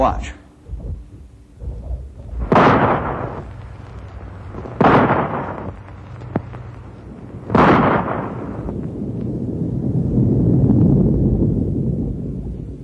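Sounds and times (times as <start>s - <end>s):
low rumble: 0.4s - 12.8s
rifle shots with booming echo: 2.4s - 3.6s, 4.8s - 5.8s, 7.4s - 8.7s.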